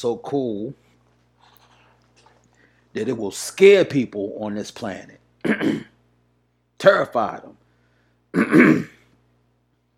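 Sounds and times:
speech: 0.0 - 0.8, 2.9 - 5.9, 6.8 - 7.6, 8.3 - 9.0
person clearing throat: 5.4 - 6.0, 8.3 - 9.1.

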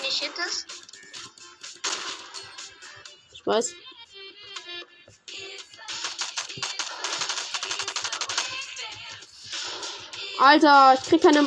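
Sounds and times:
speech: 0.1 - 0.8, 3.4 - 3.9, 10.4 - 11.4
video game pump shotgun blast from a grey pump gun: 1.8 - 2.4
quieter clicks and thuds from the game: 6.0 - 8.6.

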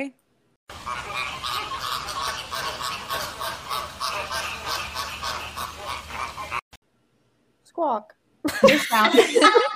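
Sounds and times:
speech: 0.0 - 1.6, 7.8 - 9.7
dense flock of flamingos honking and squawking: 0.7 - 6.6
laughter: 8.5 - 9.7.

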